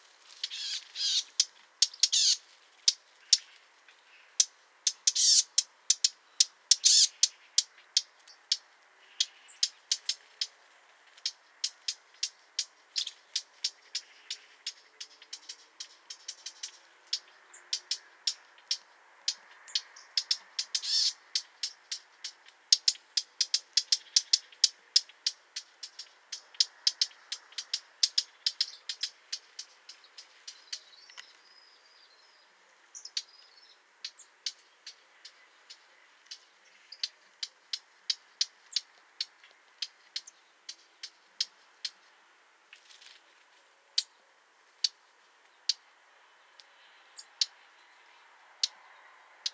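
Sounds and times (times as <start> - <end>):
agitated Mönchsgrasmücke calls: 0.4 - 3.5, 4.3 - 10.6, 11.2 - 31.7, 33.0 - 42.0, 44.8 - 45.0, 45.7 - 45.9.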